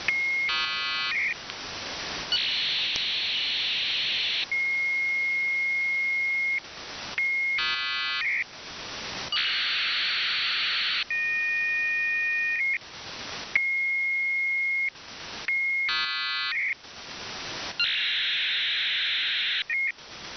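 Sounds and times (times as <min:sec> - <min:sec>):
unknown signal on shortwave: 0:00.1 - 0:01.4, 0:02.3 - 0:06.6, 0:07.2 - 0:08.5, 0:09.3 - 0:12.8, 0:13.6 - 0:16.8, 0:17.8 - 0:20.0.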